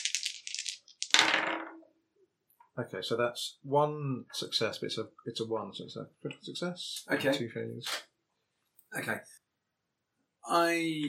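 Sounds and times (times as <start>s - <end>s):
three dice rattling during a tabletop role-playing game: 0.0s - 1.8s
speech: 2.8s - 8.1s, 8.9s - 9.4s, 10.4s - 11.0s.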